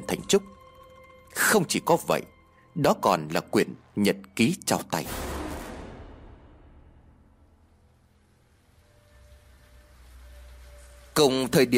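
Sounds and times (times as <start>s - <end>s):
speech: 0.2s - 0.6s, 1.4s - 5.2s, 11.2s - 11.7s
heavy rain falling in Mai Châu, Hòa Bình: 7.4s - 11.7s.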